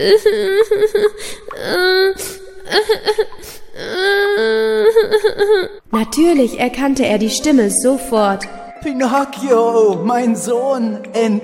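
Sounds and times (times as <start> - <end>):
child crying in sobbing bursts: 0.0 - 5.8
speech: 0.0 - 11.4.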